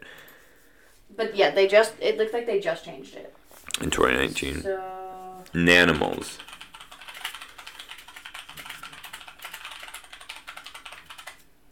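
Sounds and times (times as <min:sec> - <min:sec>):
speech: 0:01.2 - 0:06.5
computer keyboard typing clicks: 0:05.5 - 0:11.5.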